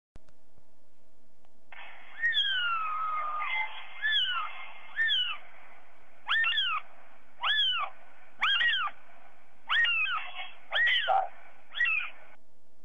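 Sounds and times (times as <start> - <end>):
little cat: 2.1 - 5.4, 6.3 - 9.0, 9.7 - 12.2.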